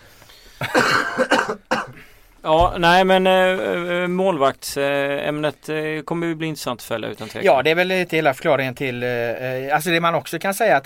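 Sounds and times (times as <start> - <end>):
speech: 0.6 - 1.5, 2.4 - 10.8
harsh coughs: 0.6 - 2.1.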